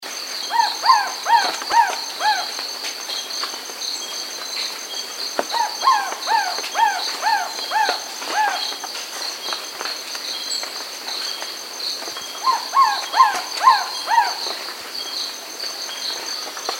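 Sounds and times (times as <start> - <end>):
white-eyed trogon calls: 0.3 - 16.7.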